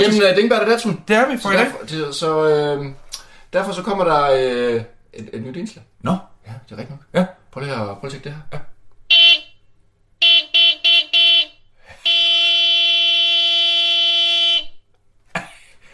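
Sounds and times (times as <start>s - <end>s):
speech: 0.0s - 8.7s
car horn honking: 9.1s - 9.6s, 10.2s - 14.8s.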